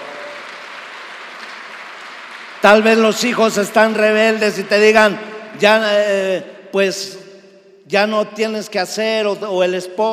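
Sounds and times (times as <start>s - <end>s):
congregation applauding: 0.0s - 4.9s
speech: 2.6s - 7.3s, 7.9s - 10.1s.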